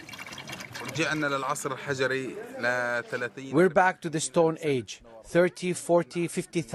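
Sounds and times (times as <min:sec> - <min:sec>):
water trickling from an underground pipe: 0:00.0 - 0:01.8
speech: 0:01.0 - 0:06.7.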